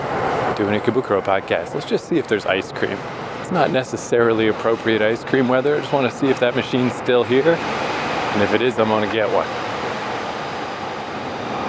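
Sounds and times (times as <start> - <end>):
loud train passing: 0.0 - 11.6
speech: 0.6 - 9.7.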